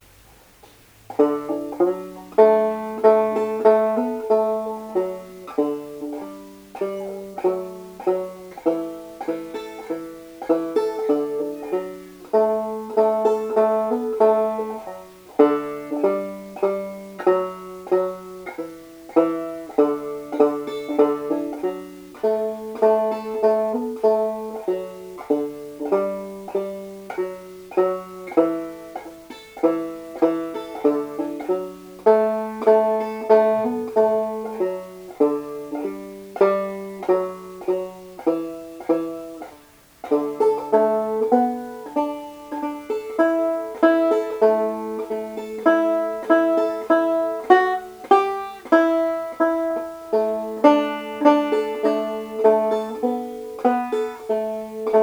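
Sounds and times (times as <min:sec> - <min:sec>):
banjo tune: 0:00.0 - 0:55.0.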